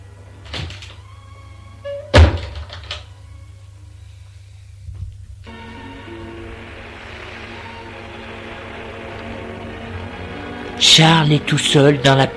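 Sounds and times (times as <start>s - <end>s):
door closing with a loud solid thud as a woman goes out: 0.5s - 1.0s, 1.9s - 3.1s
drone: 2.6s - 12.3s
speech: 10.8s - 12.3s.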